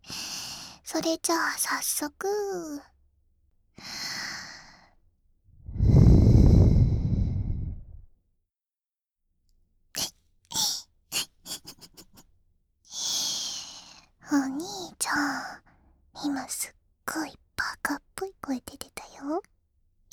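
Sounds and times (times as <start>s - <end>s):
speech: 1.0s - 2.9s, 16.2s - 19.5s
breath blown into someone's ear: 5.6s - 8.0s.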